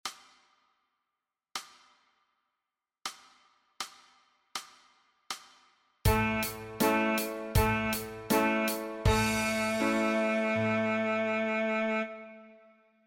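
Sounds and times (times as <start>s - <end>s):
saxophone playing G flat: 6.1s - 12.7s.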